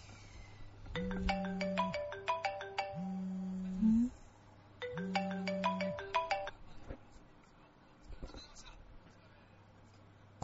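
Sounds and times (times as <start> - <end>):
mobile phone ringtone of bright melodic beeps over a low tone: 1.0 - 3.7, 4.8 - 6.6.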